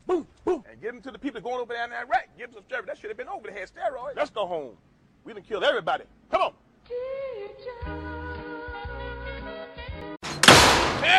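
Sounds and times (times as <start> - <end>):
speech: 1.0 - 8.1
door slammed by kids: 10.2 - 11.1.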